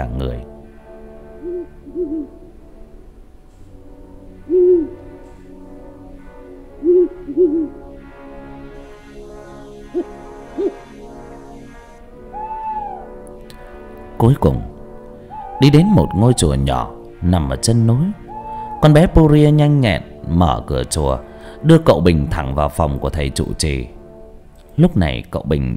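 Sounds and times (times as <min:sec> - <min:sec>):
speech: 0:00.0 - 0:00.6, 0:01.4 - 0:02.4, 0:14.2 - 0:14.7, 0:15.6 - 0:18.2, 0:18.8 - 0:24.0, 0:24.8 - 0:25.7
owls hooting at night in a dark forest: 0:01.2 - 0:02.5, 0:04.4 - 0:05.2, 0:06.6 - 0:08.0, 0:09.7 - 0:11.0, 0:12.2 - 0:13.2, 0:15.2 - 0:17.0, 0:17.7 - 0:19.7.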